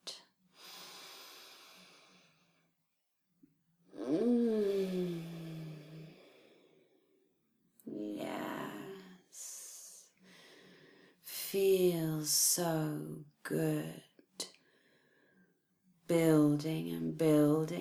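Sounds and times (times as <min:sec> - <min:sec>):
slow deep breathing in and out: 0:00.6 - 0:02.6, 0:04.0 - 0:07.2, 0:10.2 - 0:11.3
soft voiced sigh: 0:04.0 - 0:06.3
speech: 0:11.6 - 0:14.1, 0:16.1 - 0:17.8.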